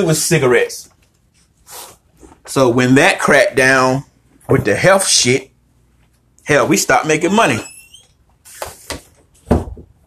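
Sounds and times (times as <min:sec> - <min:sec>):
speech: 0:00.0 - 0:00.9, 0:02.5 - 0:05.5, 0:06.4 - 0:07.7
door thud as it shifts or shuts: 0:09.5 - 0:09.9.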